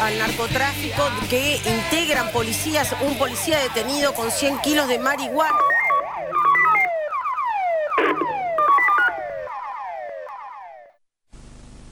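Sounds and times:
speech: 0.2s - 5.8s
electronic police patrol car siren downward-sweeping chirps: 2.7s - 11.0s.

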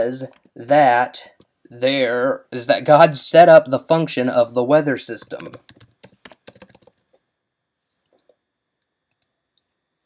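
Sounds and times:
speech: 0.0s - 5.8s
typing on a computer keyboard: 5.2s - 7.2s.

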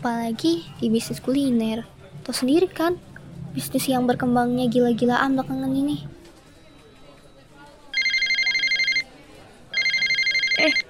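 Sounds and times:
speech: 0.0s - 6.2s
telephone ringing with a trilling electronic warble: 7.9s - 10.8s.

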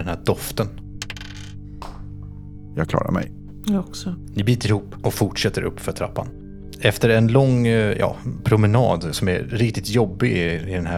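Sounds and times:
speech: 0.0s - 0.8s, 2.8s - 10.9s
two dice rolled and clattering across a hard surface: 1.0s - 1.6s.

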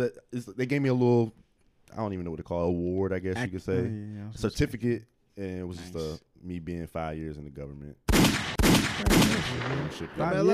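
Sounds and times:
speech: 0.0s - 8.2s, 9.0s - 10.5s
loud sharp gunshot bangs with rumbling tails: 8.1s - 10.5s.

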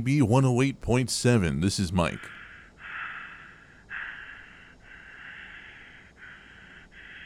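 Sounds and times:
speech: 0.0s - 2.4s
heavy breathing on a phone line: 2.2s - 7.2s.

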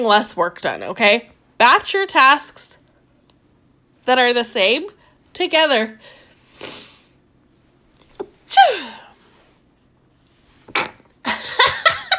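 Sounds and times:
speech: 0.0s - 2.7s, 4.0s - 6.8s, 8.5s - 9.0s
person sneezing: 8.2s - 9.2s, 10.7s - 11.1s.

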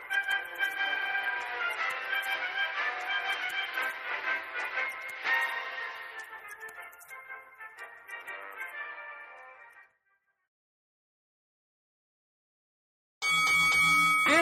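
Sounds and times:
soft tonal music: 0.0s - 9.6s
boxing ring bell clanging: 13.2s - 14.3s.

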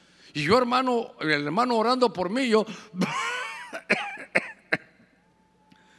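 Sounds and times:
speech: 0.4s - 3.2s
man coughing: 2.7s - 5.2s.

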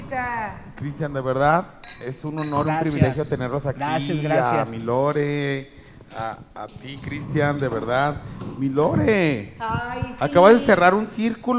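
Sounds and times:
speech: 0.1s - 11.5s
drinking glasses clinking in a toast: 1.8s - 9.4s.

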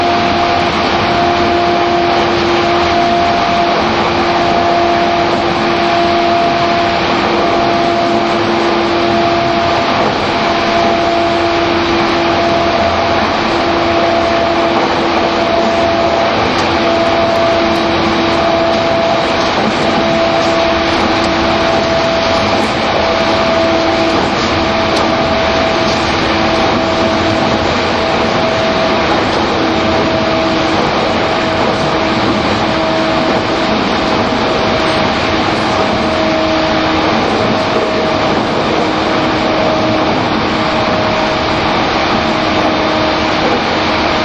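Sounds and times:
E231 commuter train motor whine: 0.0s - 44.2s
commuter train wheels and rails roaring at speed: 0.0s - 44.2s.

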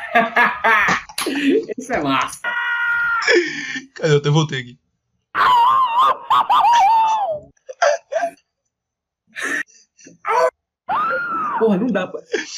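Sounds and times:
laughter: 0.0s - 4.6s, 5.5s - 8.3s, 11.1s - 12.5s
speech: 0.2s - 2.5s, 3.2s - 4.8s, 11.6s - 12.5s
hoarse high-pitched screams: 2.4s - 3.3s, 5.4s - 7.4s, 10.3s - 11.6s.

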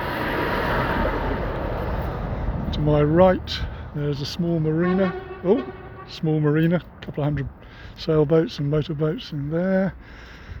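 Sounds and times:
lorry driving past on its way onto a ferry: 0.0s - 7.9s
speech: 2.8s - 10.4s.

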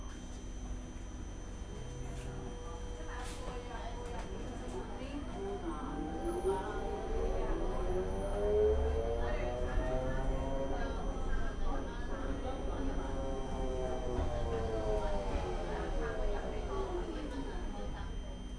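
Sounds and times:
city bus engine rumble: 0.1s - 18.5s
voices murmuring inside a city bus: 1.6s - 18.5s
rising and falling whine of an accelerating bus: 5.4s - 11.3s, 12.6s - 17.5s.

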